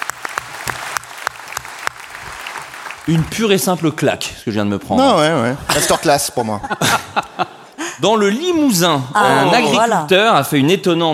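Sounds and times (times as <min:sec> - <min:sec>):
scattered applause: 0:00.0 - 0:04.2
speech: 0:03.1 - 0:11.1
laughter: 0:05.4 - 0:08.4.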